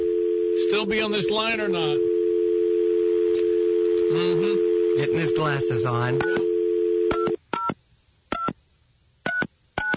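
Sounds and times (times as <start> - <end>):
telephone dial tone: 0.0 - 1.0, 1.7 - 7.4
telephone touch-tone beeps: 0.0 - 7.7
speech: 0.8 - 2.2, 4.1 - 6.5.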